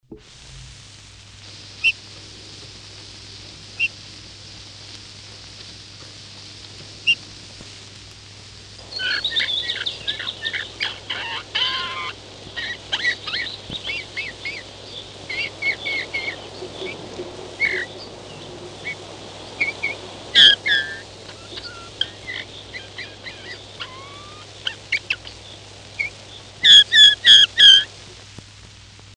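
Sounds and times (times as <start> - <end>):
bullfinch: 3.8 - 4.0, 8.8 - 27.9.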